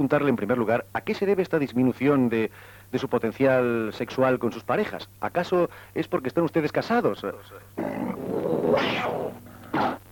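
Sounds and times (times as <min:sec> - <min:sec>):
speech: 0:00.0 - 0:09.5
Sumatran tiger growling and snarling: 0:07.8 - 0:10.0.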